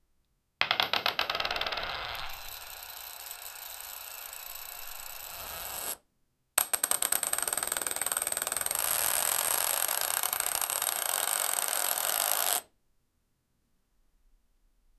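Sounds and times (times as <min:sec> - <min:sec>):
roulette wheel spinning: 0:00.6 - 0:06.0, 0:06.6 - 0:12.7.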